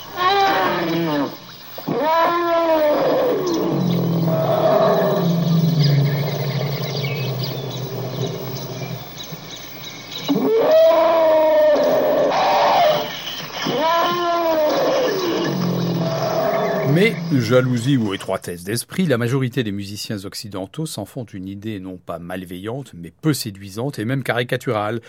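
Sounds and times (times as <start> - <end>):
elephant trumpeting in brassy wavering blasts: 0.0 - 9.2, 10.1 - 18.0
speech: 17.3 - 25.0.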